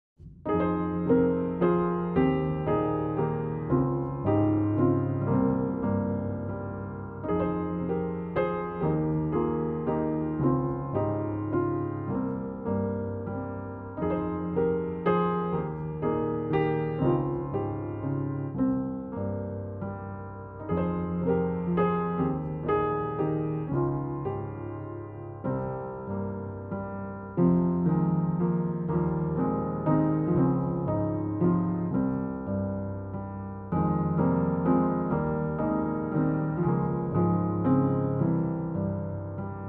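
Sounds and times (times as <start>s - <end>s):
piano: 0.2s - 39.6s.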